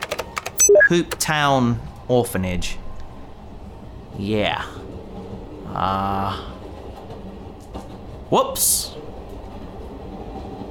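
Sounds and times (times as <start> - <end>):
speech: 0.9 - 2.8, 4.2 - 4.9, 5.7 - 6.5, 8.3 - 9.0
train clattering along rails: 4.6 - 10.6.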